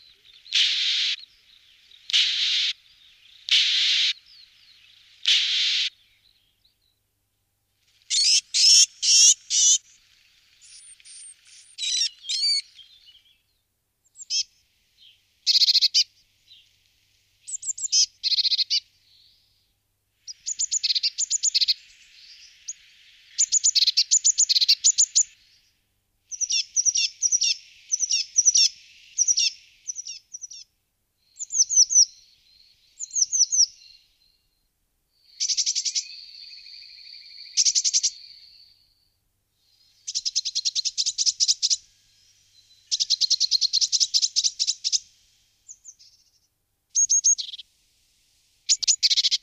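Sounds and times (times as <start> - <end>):
Parus caeruleus blue tit calling: 0.2 - 6.0, 8.1 - 9.9, 10.6 - 13.4, 14.1 - 14.6, 15.4 - 16.1, 17.4 - 19.4, 20.3 - 25.5, 26.3 - 30.7, 31.4 - 34.0, 35.3 - 38.7, 39.8 - 41.9, 42.6 - 45.1, 47.0 - 47.6, 48.7 - 49.4.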